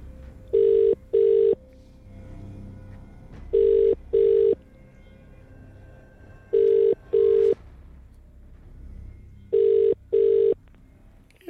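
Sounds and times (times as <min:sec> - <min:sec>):
phone line ringing on an outgoing call: 0:00.5 - 0:01.6, 0:03.6 - 0:04.6, 0:06.5 - 0:07.6, 0:09.5 - 0:10.6.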